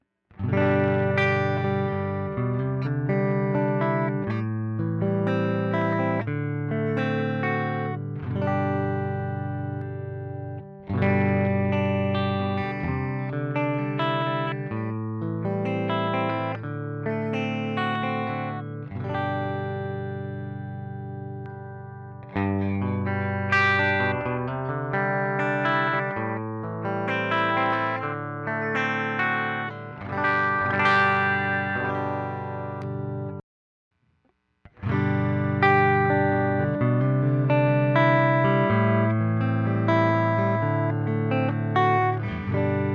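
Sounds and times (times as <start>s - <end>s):
electric guitar with P-90 pickups: 0.0s - 33.4s, 34.7s - 42.9s.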